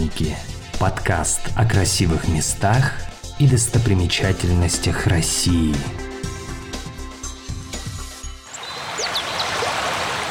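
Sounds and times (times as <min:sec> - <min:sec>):
rhythmic music: 0:00.0 - 0:08.4
speech: 0:00.1 - 0:06.1
loud rush of falling water: 0:08.5 - 0:10.2.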